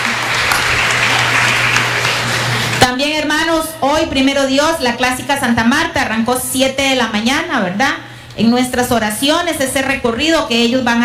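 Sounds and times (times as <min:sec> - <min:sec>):
church congregation applauding a branch group: 0:00.0 - 0:02.9
speech: 0:03.0 - 0:11.0.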